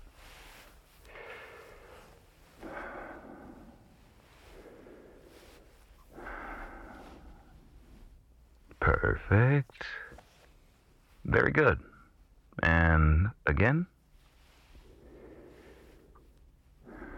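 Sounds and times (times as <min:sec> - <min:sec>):
patient breathing deeply during a baseline check: 0:00.0 - 0:08.2, 0:14.4 - 0:17.1
speech: 0:09.0 - 0:10.0, 0:11.3 - 0:11.9, 0:12.6 - 0:13.9.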